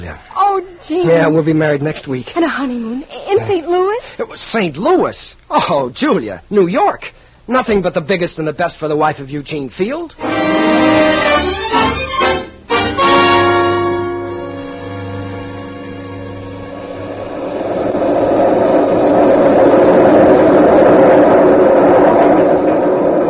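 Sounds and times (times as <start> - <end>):
speech: 0.1 - 11.6
new elevated railway train in New York rumbling past overhead: 10.2 - 23.2.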